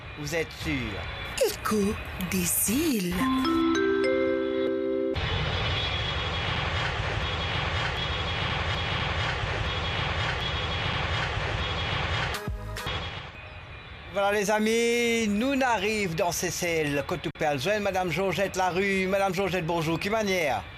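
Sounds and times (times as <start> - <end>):
airplane engine roar during takeoff: 0.0 - 14.2
speech: 0.2 - 4.3, 14.2 - 20.7.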